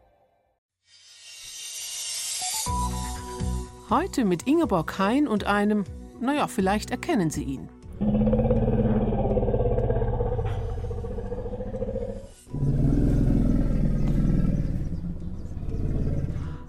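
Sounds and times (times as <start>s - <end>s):
speech: 3.9s - 8.6s
elephant call with a deep harmonic rumbling roar: 7.9s - 16.6s.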